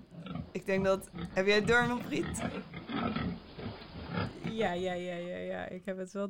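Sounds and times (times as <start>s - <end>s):
pigs grunting: 0.0s - 4.8s
speech: 0.6s - 3.5s, 4.5s - 6.2s.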